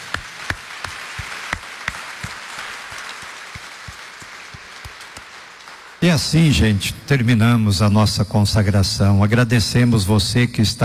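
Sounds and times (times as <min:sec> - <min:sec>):
crowd applauding in a large room: 0:00.0 - 0:06.8
speech: 0:06.0 - 0:10.8.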